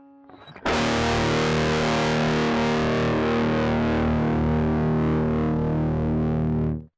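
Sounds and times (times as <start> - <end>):
subharmonic rumble from preamp output channel: 0.7 - 6.9.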